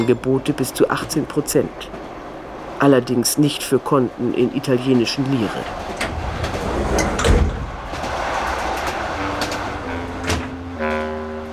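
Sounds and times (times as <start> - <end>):
speech: 0.0 - 2.0, 2.8 - 5.9
steady low rumble of the moving train: 0.0 - 11.5
train compartment sliding door rolling open: 5.4 - 10.9.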